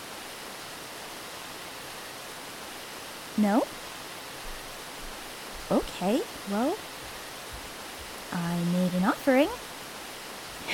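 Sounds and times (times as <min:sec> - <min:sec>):
waterfall rushing water: 0:00.0 - 0:10.7
speech: 0:03.4 - 0:03.8, 0:05.7 - 0:06.9, 0:08.3 - 0:09.7.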